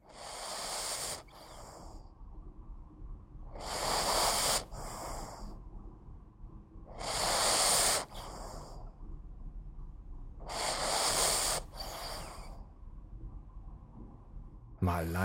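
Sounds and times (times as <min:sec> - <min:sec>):
sleeping Boston terrier puppy breathing and snorting: 0:00.0 - 0:01.9, 0:03.6 - 0:05.4, 0:06.9 - 0:08.8, 0:10.4 - 0:12.6
speech: 0:14.9 - 0:15.2.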